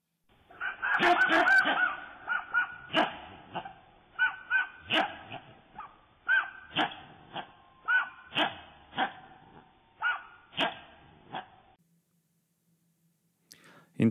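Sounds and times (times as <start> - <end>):
slowed-down squirrel barks: 0.5 - 11.7
speech: 1.0 - 2.0.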